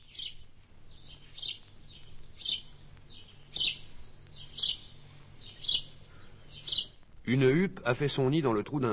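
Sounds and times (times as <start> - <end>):
sparrows chirping in a farmyard: 0.0 - 8.6
low steady hum: 0.0 - 8.9
speech: 7.3 - 8.9.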